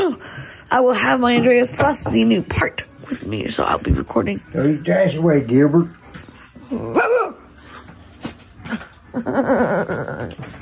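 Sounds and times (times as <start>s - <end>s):
speech: 0.1s - 7.1s, 8.7s - 10.6s
dog barking at a man: 6.9s - 7.4s.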